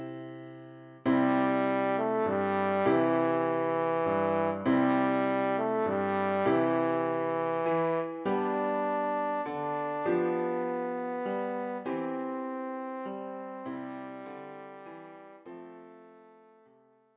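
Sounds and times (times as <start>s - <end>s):
horn playing a carol: 1.1s - 16.7s.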